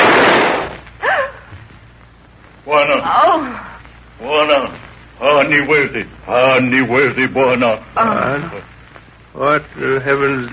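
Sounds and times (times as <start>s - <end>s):
gunshot: 0.0s - 0.8s
speech: 2.7s - 8.7s, 9.4s - 10.5s.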